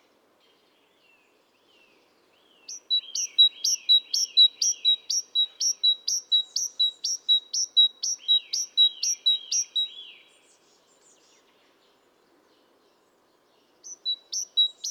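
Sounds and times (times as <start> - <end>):
Great tit Parus major calls: 2.7 - 9.9, 13.8 - 14.9.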